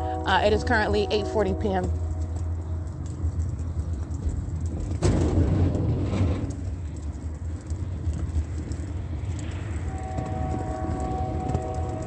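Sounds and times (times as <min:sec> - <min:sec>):
Union Pacific freight train rumbling past: 0:00.0 - 0:12.0
speech: 0:00.3 - 0:02.0.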